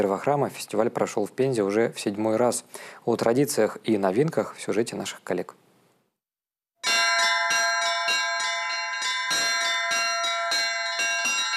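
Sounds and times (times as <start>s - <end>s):
speech: 0.0s - 5.6s
church bells ringing at a bell-ringing master class in Penza Russia: 6.8s - 11.5s.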